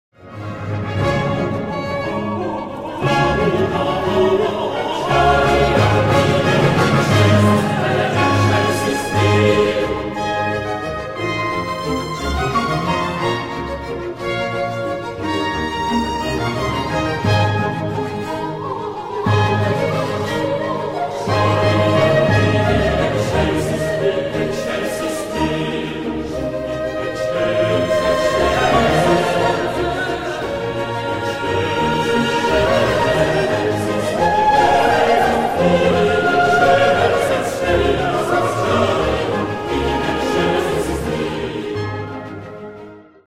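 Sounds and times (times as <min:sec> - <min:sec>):
choral mass music: 0:00.2 - 0:43.2.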